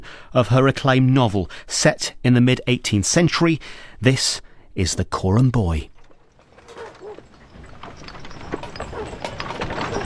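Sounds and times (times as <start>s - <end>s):
speech: 0.3s - 5.9s
hooves of a mule carrying panniers clip-clopping: 5.4s - 10.0s
faint voices murmuring outdoors: 5.6s - 10.0s.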